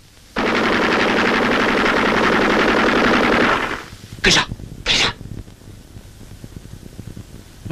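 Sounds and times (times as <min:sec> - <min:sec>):
machine gun firing in wartime combat: 0:00.4 - 0:03.9
speech: 0:04.2 - 0:04.5.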